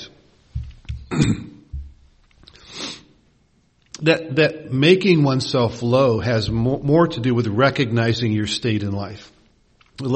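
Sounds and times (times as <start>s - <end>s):
coughs: 1.0s - 1.7s
speech: 1.2s - 1.5s, 4.0s - 9.4s, 10.0s - 10.1s.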